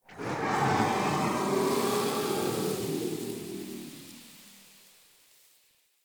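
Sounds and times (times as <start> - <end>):
outdoor wind gust: 0.1 - 4.6.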